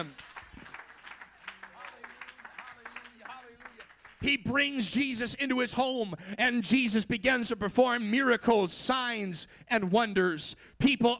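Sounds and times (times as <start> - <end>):
speech: 0.0 - 0.4, 4.2 - 11.1
audience clapping hands: 0.0 - 5.0.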